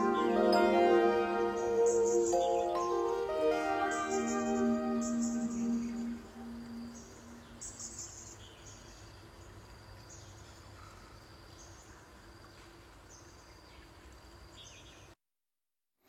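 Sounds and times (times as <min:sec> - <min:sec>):
steady rush of flowing water: 0:00.0 - 0:08.0
birds chirping and trilling: 0:00.0 - 0:08.8.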